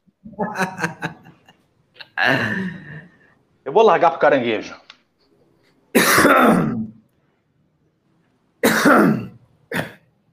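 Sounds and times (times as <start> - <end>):
laughter: 0.2 - 3.1
speech: 0.4 - 1.2, 2.2 - 2.7, 3.8 - 4.8, 6.2 - 6.7
harsh throaty coughing: 5.9 - 7.0, 8.6 - 10.1.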